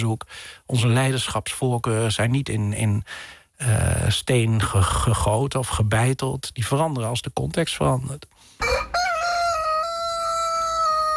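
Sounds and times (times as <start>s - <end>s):
speech: 0.0s - 8.9s
rooster crowing: 8.6s - 11.1s.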